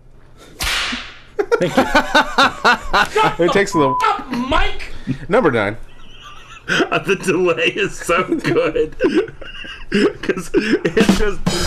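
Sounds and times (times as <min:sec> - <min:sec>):
whip crack: 0:00.6 - 0:01.2
laughter: 0:01.4 - 0:11.5
speech: 0:01.6 - 0:05.9, 0:06.7 - 0:11.6.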